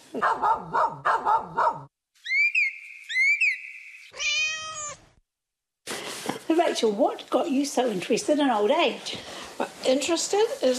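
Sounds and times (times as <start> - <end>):
speech: 0.1 - 1.9, 6.5 - 10.7
dog barking: 0.2 - 1.9
cat meowing and wailing: 4.1 - 5.2.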